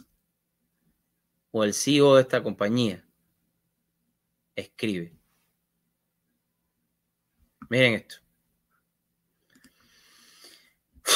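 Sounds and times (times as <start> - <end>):
speech: 1.5 - 3.0, 4.6 - 5.2, 7.7 - 8.2
deep breath in: 9.6 - 10.8.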